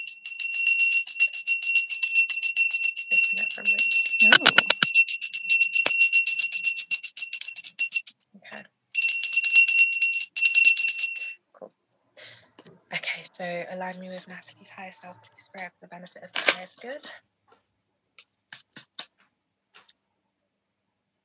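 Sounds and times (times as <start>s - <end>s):
small bell being rung to clear energy: 0.0s - 11.4s
clatter: 1.8s - 8.1s
speech: 3.6s - 4.6s, 13.4s - 17.4s.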